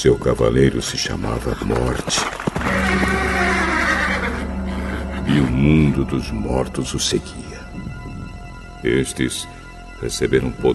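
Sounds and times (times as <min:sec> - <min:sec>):
speech: 0:00.0 - 0:03.3, 0:05.3 - 0:07.9, 0:08.8 - 0:10.7
horse neighing in a long loud whinny: 0:02.6 - 0:05.3.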